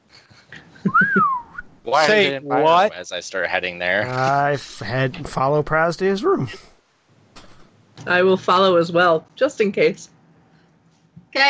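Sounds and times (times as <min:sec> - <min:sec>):
person attempting to whistle: 0:00.9 - 0:01.7
speech: 0:01.9 - 0:06.7, 0:08.0 - 0:10.2.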